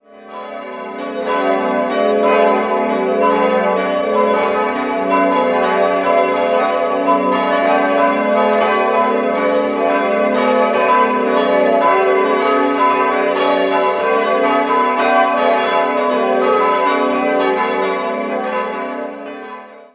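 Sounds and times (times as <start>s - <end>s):
parish church bells in Elbersroth, Landkreis Ansbach, Middle Franconia: 0.0s - 19.9s.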